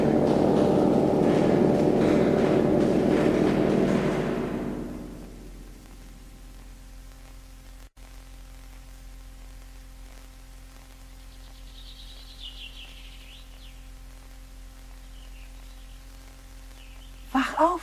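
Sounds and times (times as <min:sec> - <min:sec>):
birds singing in the morning: 0:00.0 - 0:05.8, 0:11.1 - 0:14.1, 0:14.9 - 0:17.5
steady electrical hum and hiss: 0:00.0 - 0:17.8
speech: 0:17.6 - 0:17.8.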